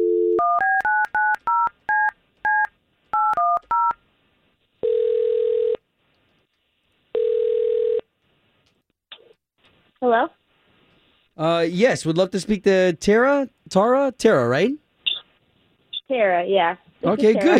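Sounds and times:
long electronic telephone ring tones: 0.0s - 4.0s, 4.8s - 5.8s, 7.2s - 8.0s
touch-tone dial beeps of a phone number being dialed: 0.0s - 4.0s
speech: 10.1s - 10.4s, 11.4s - 14.8s, 16.1s - 17.5s.

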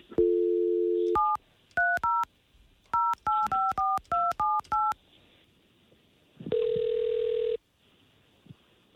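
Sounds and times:
telephone dial tone: 0.2s - 1.3s, 6.5s - 7.6s
telephone dual-pitch keypad tones: 0.2s - 2.3s, 2.9s - 5.0s.

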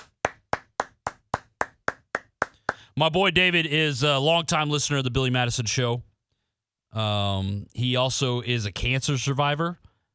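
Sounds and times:
hands clapping: 0.0s - 2.9s
speech: 3.0s - 6.1s, 6.9s - 9.9s.

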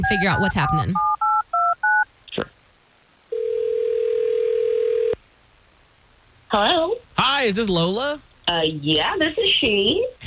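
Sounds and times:
speech: 0.0s - 1.1s, 6.6s - 6.8s, 7.4s - 10.2s
touch-tone dialing beeps: 0.0s - 2.0s, 3.4s - 5.2s
long steady phone ring tone as a call connects: 3.3s - 5.2s.

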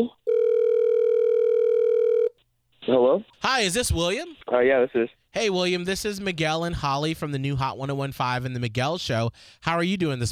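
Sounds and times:
telephone line ringing tone as a call is placed: 0.3s - 2.4s
speech: 2.9s - 10.3s.

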